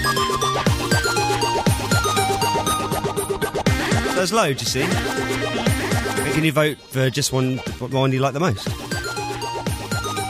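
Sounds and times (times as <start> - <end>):
busy electronic mobile phone ringtone melody: 0.0 - 6.4, 8.8 - 10.2
speech: 4.2 - 8.9.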